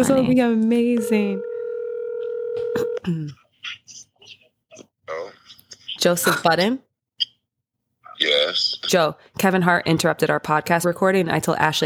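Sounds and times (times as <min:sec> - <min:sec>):
speech: 0:00.0 - 0:01.5, 0:03.0 - 0:03.8, 0:06.0 - 0:06.9, 0:08.2 - 0:11.8
telephone's electronic dialing tones: 0:01.0 - 0:03.0.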